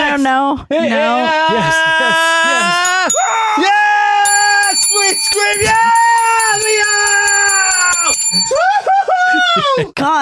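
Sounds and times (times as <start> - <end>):
speech: 0.2 - 2.9, 9.7 - 10.2
metallic hand bell ringing: 2.9 - 8.6.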